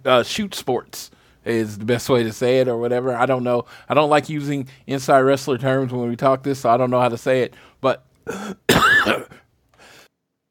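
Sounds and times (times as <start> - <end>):
speech: 0.0 - 9.4
person coughing with throat clearing: 8.3 - 9.5.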